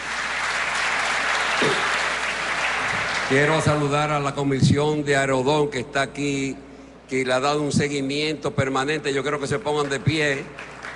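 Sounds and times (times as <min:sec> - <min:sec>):
crowd applause: 0:00.0 - 0:04.0, 0:09.8 - 0:10.9
speech: 0:03.3 - 0:10.7.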